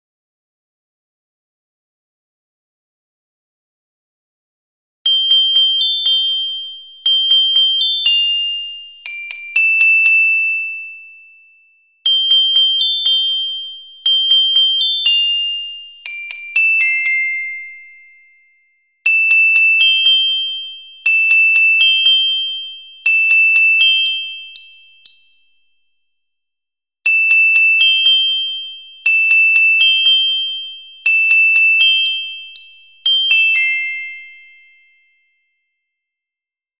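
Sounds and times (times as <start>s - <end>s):
carillon bells: 5.1s - 11.0s, 12.0s - 25.7s, 27.1s - 35.2s.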